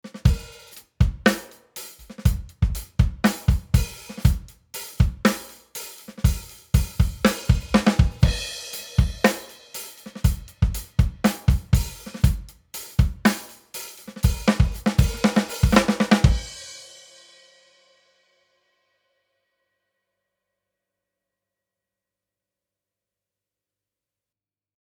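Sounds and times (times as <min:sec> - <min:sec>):
drums without compression: 0:00.0 - 0:18.0.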